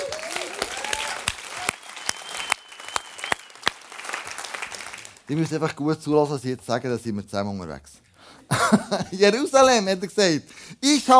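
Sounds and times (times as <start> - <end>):
audience applause for the technicians: 0.0 - 5.3
speech: 5.3 - 8.0, 8.6 - 11.1
laughter: 8.5 - 9.2.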